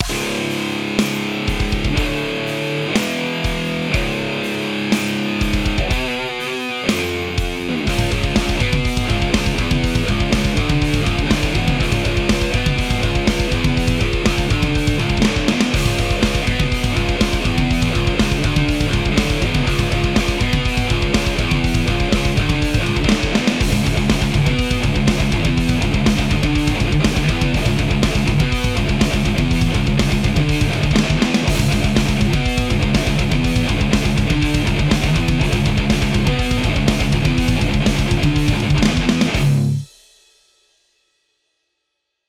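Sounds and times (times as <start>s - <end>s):
double-tracked guitars with delay effect: 0.0s - 39.9s.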